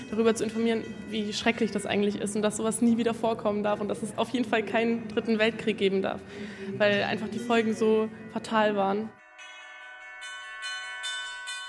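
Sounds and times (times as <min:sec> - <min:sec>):
church bells ringing in a town on the Main river: 0:00.0 - 0:04.0, 0:07.4 - 0:11.6
speech: 0:00.1 - 0:09.2.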